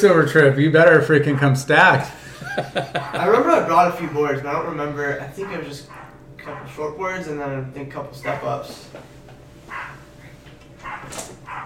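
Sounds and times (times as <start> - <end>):
speech: 0.0 - 10.0
low steady hum: 0.0 - 11.6
neighbor's dog barking at a distance: 1.2 - 1.9, 5.4 - 6.8, 8.2 - 8.7, 9.6 - 11.6
laughter: 2.1 - 4.0.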